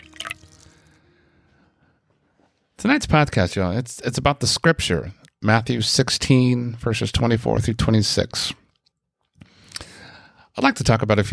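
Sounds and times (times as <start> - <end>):
drink being poured into a glass: 0.0 - 1.0
soft fizz of a drink: 0.0 - 1.0
speech: 2.8 - 8.6, 10.6 - 11.3.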